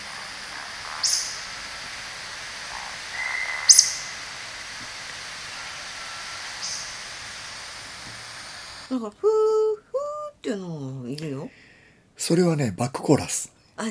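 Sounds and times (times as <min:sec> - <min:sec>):
bird calling outdoors with soft low buzzy notes: 0:00.0 - 0:09.0
quiet hiss: 0:00.0 - 0:13.8
sharp high bird chirp: 0:00.8 - 0:01.6, 0:03.1 - 0:04.3, 0:05.5 - 0:07.1
speech: 0:08.9 - 0:09.6, 0:10.4 - 0:13.8.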